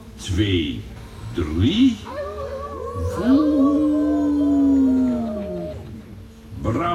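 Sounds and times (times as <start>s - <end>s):
speech: 0.2s - 2.2s, 3.2s - 3.8s
group of children and adults howling like a wolf: 2.0s - 6.2s.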